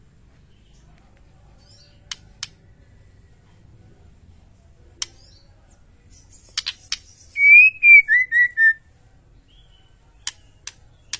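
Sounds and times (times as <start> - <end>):
sharp clicks: 2.1 - 2.6, 10.2 - 11.1
white-rumped shama whistled song: 6.3 - 8.8.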